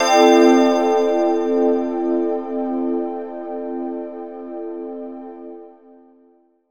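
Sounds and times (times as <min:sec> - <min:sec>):
metatonal perfect major chord: 0:00.0 - 0:02.8.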